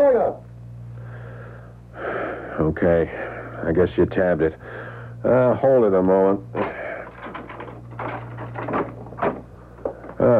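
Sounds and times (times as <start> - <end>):
low hum: 0.0 - 10.3
speech: 2.6 - 6.7
door latch and frame rattling as door is opened: 7.1 - 9.5.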